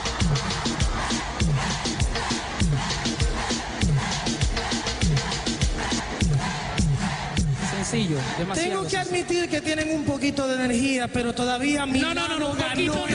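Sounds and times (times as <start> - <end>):
pounding steady dembow dance beat: 0.0 - 9.6
loud crowd shouting and cheering: 0.0 - 13.1
speech: 7.9 - 13.1.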